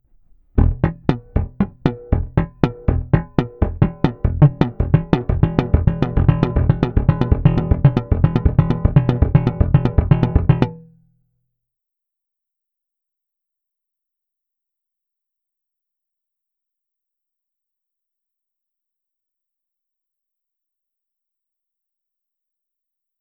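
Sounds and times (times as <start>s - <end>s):
slap exercise triplets: 0.6s - 10.8s.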